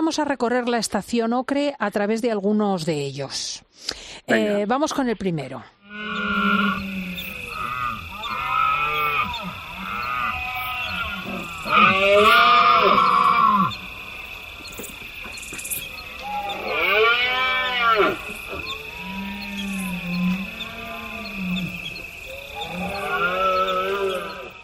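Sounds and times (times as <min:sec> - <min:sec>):
speech: 0:00.1 - 0:06.4
red deer stags bellowing during autumn rut: 0:05.9 - 0:24.6.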